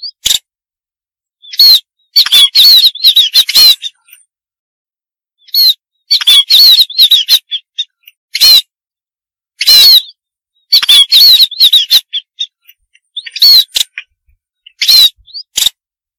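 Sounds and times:
Munia squawks and undulating high whistles: 1.4 - 4.2, 5.4 - 8.7, 9.6 - 15.6.

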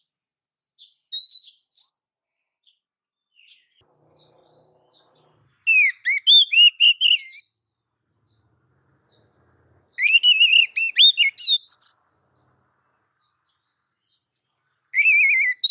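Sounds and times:
female oriental magpie-robin calling: 0.8 - 2.1, 5.6 - 7.6, 9.0 - 12.5, 14.8 - 15.6.

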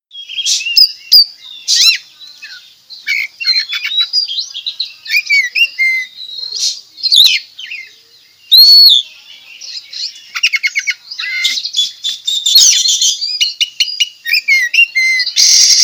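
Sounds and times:
Oriental magpie-robin singing vigorously at Tretes: 0.1 - 15.8.

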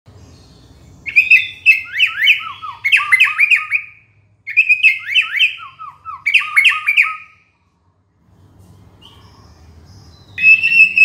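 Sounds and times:
shama whistling clear descending notes in Borneo: 1.1 - 7.4, 10.4 - 11.0.

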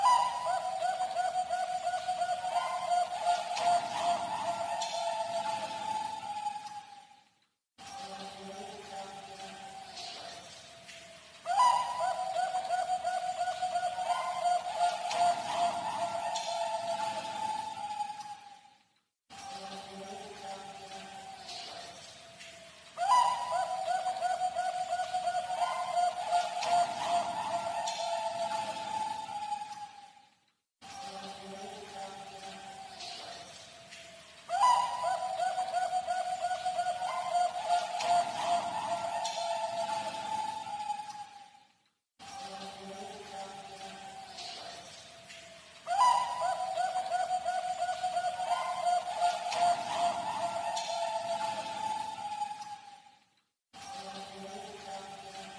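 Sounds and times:
Bangkok zebra dove calling: 0.0 - 6.8, 11.5 - 18.4, 23.0 - 29.9, 34.5 - 41.3, 45.9 - 52.8.

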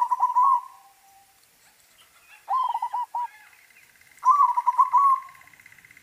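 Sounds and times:
white Zebra dove song: 0.0 - 1.3, 1.9 - 3.6, 4.2 - 5.6.

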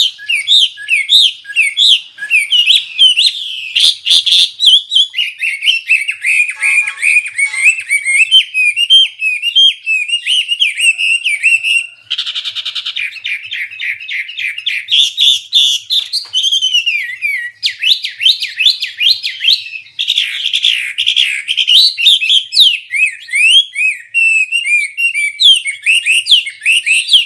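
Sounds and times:
Hwamei singing varied song of whistles and trills: 0.0 - 27.2
Hwamei harsh rattling burst: 6.4 - 8.2.

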